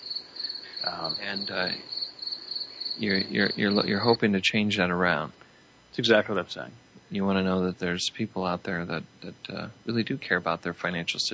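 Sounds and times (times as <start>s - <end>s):
crickets chirping: 0.0s - 5.3s
speech: 0.8s - 2.0s, 3.0s - 11.3s.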